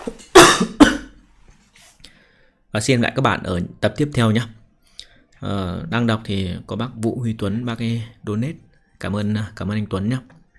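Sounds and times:
person coughing: 0.3s - 1.2s
speech: 2.8s - 4.6s, 5.4s - 10.4s.

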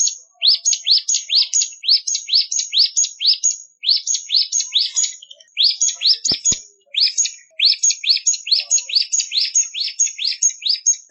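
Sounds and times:
Hill Prinia song: 0.0s - 11.0s.

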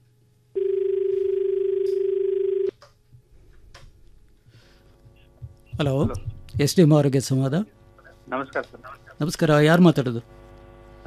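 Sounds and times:
telephone line tone as a radio phone-in call is picked up: 0.6s - 2.7s
speech: 5.8s - 10.4s.

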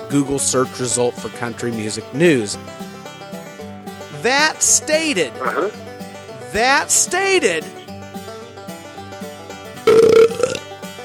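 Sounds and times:
speech: 0.1s - 2.9s, 4.2s - 5.9s, 6.5s - 7.8s
wet belch sound effect: 5.4s - 5.8s, 9.9s - 10.7s.

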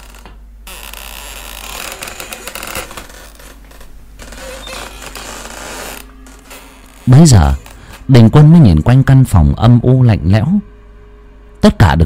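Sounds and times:
door creaking as it is pushed open: 0.0s - 8.2s
speech: 7.1s - 10.7s, 11.6s - 12.0s.

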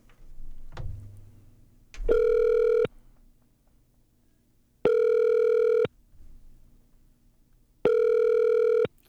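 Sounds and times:
soft taps: 0.0s - 2.5s
ringback tone of a phone placing a video call: 2.1s - 2.9s, 4.9s - 5.9s, 7.9s - 8.9s.

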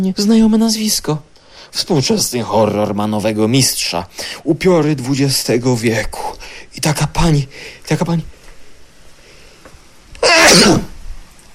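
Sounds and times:
speech: 0.0s - 8.3s, 10.4s - 10.9s
sneeze: 10.2s - 11.0s.

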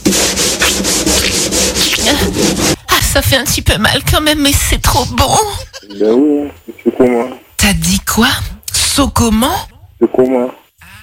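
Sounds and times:
sandpaper sanding a conch shell: 0.0s - 2.8s
speech: 3.3s - 10.6s.

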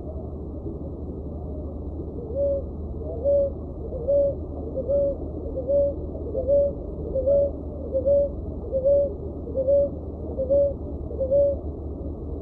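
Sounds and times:
soft background hum: 0.0s - 12.4s
Leptotila dove calling with low hoots: 2.2s - 11.7s.

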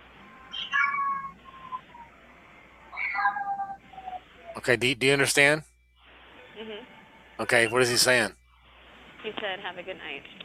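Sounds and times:
cat meowing: 0.5s - 1.4s, 2.9s - 3.8s
speech: 4.6s - 5.7s, 7.4s - 8.4s, 9.2s - 10.4s.

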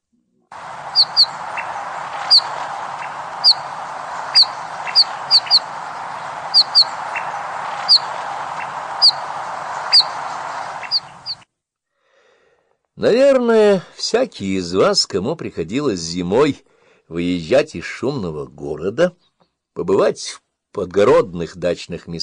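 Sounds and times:
steady low hiss: 0.5s - 11.4s
red-breasted bullfinch calls in winter countryside near dachas: 0.6s - 11.4s
speech: 13.0s - 19.2s, 19.8s - 22.2s.

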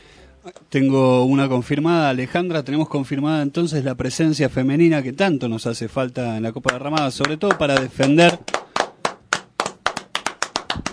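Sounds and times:
speech: 0.4s - 8.6s
hands clapping: 6.6s - 10.9s.

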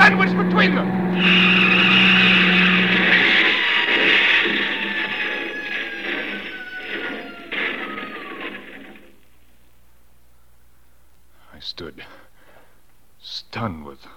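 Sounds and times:
big truck engine roaring past around a bend in the road: 0.0s - 9.4s
speech: 13.6s - 14.1s.

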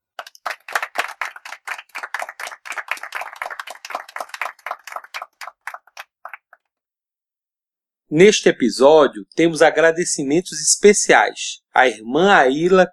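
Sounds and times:
hands clapping in applause: 0.0s - 6.7s
speech: 8.1s - 12.9s.

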